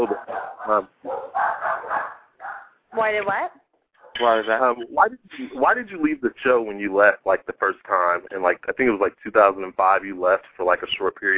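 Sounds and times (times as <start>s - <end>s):
laughter: 0.0s - 0.8s, 4.2s - 11.3s
dog barking: 0.0s - 2.7s
speech: 0.7s - 1.0s, 3.0s - 3.6s, 4.2s - 11.3s.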